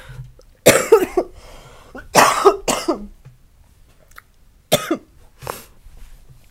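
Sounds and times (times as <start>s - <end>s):
person coughing in harsh bursts: 0.6s - 1.3s, 2.0s - 3.1s, 4.7s - 5.1s.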